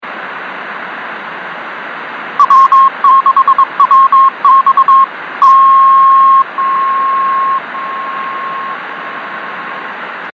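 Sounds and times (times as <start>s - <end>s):
radio beacon signal on 24930 kHz: 2.4s - 8.8s.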